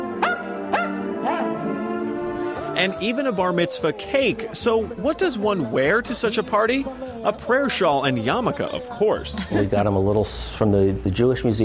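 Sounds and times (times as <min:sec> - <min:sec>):
dog barking in a video: 0:00.2 - 0:01.8
speech: 0:02.8 - 0:11.6
laughter: 0:09.2 - 0:09.9.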